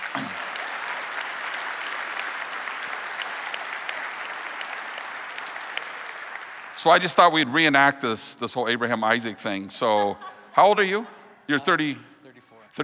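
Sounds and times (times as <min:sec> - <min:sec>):
large crowd applauding in a big room: 0:00.0 - 0:08.0
speech: 0:00.2 - 0:00.4, 0:06.8 - 0:12.1
laughter: 0:09.5 - 0:11.1.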